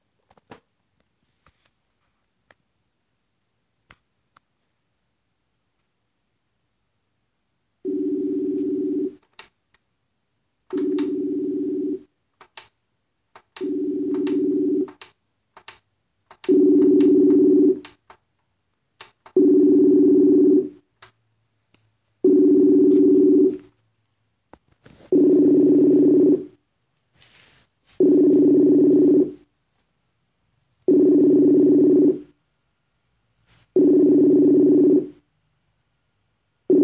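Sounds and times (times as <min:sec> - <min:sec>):
telephone line tones of a call being dialed: 0:07.8 - 0:09.2, 0:10.7 - 0:12.1, 0:13.6 - 0:15.0, 0:16.4 - 0:17.9, 0:19.4 - 0:20.8, 0:22.2 - 0:23.7, 0:25.1 - 0:26.6, 0:28.0 - 0:29.4, 0:30.9 - 0:32.3, 0:33.8 - 0:35.2.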